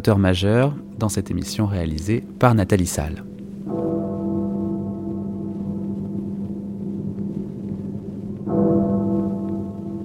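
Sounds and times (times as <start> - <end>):
speech: 0.0 - 3.8
deep resonant bell tolling midnight in England: 2.2 - 10.0.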